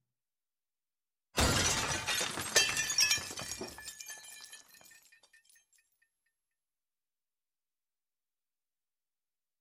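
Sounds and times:
drinking glass falling and shattering on a hard floor: 1.4 - 6.0.

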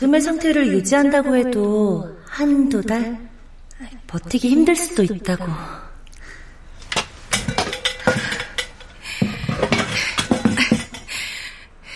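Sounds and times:
speech: 0.0 - 5.9
old metal pots and kitchenware clattering during rummaging: 6.8 - 11.3.

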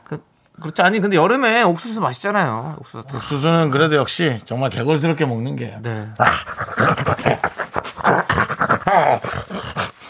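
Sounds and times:
speech: 0.1 - 7.5
man imitating a wolf growling and panting: 6.2 - 10.0.

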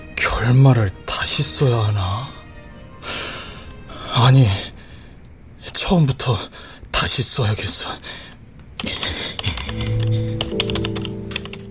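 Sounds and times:
speech: 0.4 - 2.4, 4.2 - 4.7, 5.9 - 9.1
rapid typing on a computer keyboard: 8.8 - 11.7.

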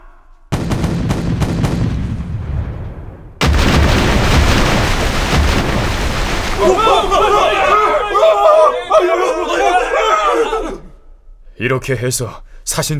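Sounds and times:
cannon fire aimed at a guesthouse: 0.5 - 8.0
laughter: 6.6 - 10.8
speech: 11.6 - 12.9.

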